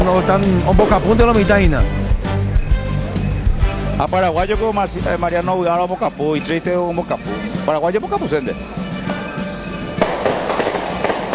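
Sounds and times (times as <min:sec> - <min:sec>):
steady noise: 0:00.0 - 0:11.3
speech: 0:00.1 - 0:02.0, 0:04.0 - 0:08.8
firecrackers exploding at a school: 0:09.9 - 0:11.3.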